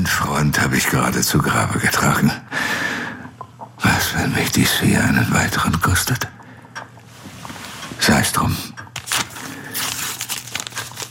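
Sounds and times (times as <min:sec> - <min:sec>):
speech: 0:00.5 - 0:03.0, 0:04.3 - 0:06.4, 0:08.1 - 0:08.7
paper envelope being handled: 0:08.9 - 0:11.0.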